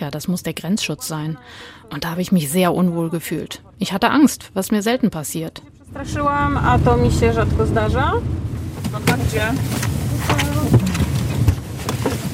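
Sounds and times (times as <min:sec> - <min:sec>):
speech: 0:00.0 - 0:10.4
car engine rumbling: 0:00.0 - 0:12.3
car door clunks and thuds: 0:08.7 - 0:12.3.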